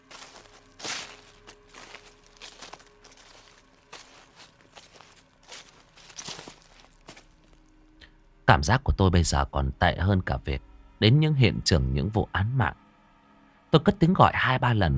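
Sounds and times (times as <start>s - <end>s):
footsteps rustling and crunching on dry leaves: 0.0s - 7.8s
speech: 8.5s - 12.8s, 13.7s - 14.9s.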